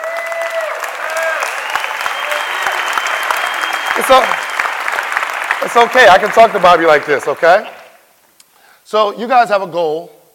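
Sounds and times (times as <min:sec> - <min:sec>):
people whooping: 0:00.0 - 0:07.1
crowd applause: 0:00.0 - 0:08.0
speech: 0:04.0 - 0:04.4, 0:05.6 - 0:07.8, 0:08.9 - 0:10.2.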